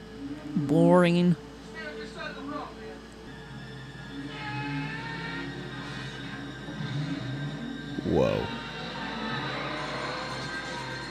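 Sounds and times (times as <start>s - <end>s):
speech: 0.7s - 1.5s
race car engines accelerating: 4.1s - 11.0s.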